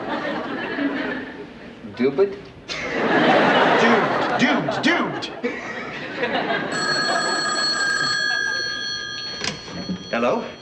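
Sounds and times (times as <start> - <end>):
laughter: 0.0 - 1.8, 2.7 - 8.8
speech: 2.0 - 3.2, 10.2 - 10.5
telephone bell ringing: 6.5 - 10.5.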